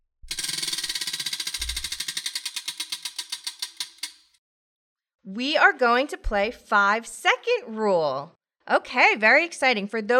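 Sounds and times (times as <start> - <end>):
game wheel spinning with ratcheting clicks: 0.3 - 4.4
speech: 5.3 - 10.1.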